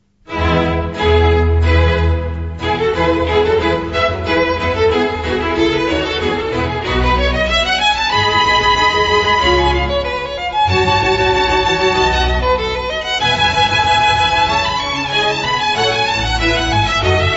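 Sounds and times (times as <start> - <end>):
solo violin and orchestra playing a violin concerto allegro: 0.3 - 17.3.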